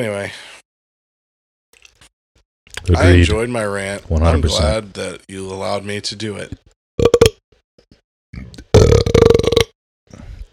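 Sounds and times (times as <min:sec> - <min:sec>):
speech: 0:00.0 - 0:00.5, 0:02.9 - 0:06.7
person burping: 0:07.0 - 0:07.4, 0:08.4 - 0:09.8.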